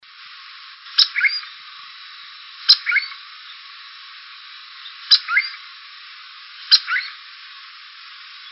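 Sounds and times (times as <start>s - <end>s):
light background hiss: 0.0s - 8.5s
cuckoo calling with a click and warbled notes: 1.0s - 1.6s, 2.7s - 3.2s, 4.8s - 5.6s, 6.7s - 7.2s.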